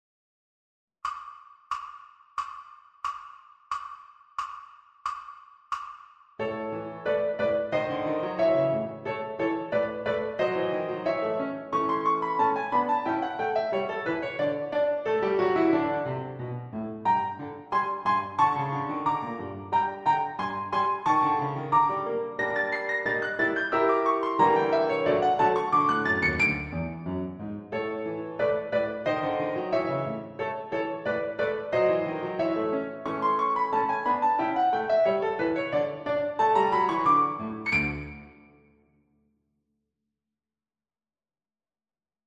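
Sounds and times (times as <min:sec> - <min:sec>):
piano backing track: 0:06.4 - 0:38.6.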